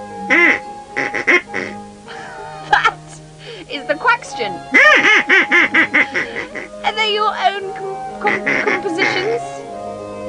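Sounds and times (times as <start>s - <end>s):
duck quacking: 0.3s - 3.6s, 4.7s - 7.6s, 8.2s - 9.6s
speech: 4.2s - 5.4s.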